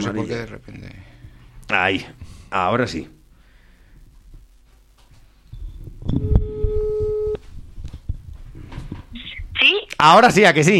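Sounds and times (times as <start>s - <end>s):
speech: 0.0s - 1.1s, 1.7s - 3.2s, 9.7s - 10.7s
steady electronic telephone tone while dialing: 6.1s - 7.4s.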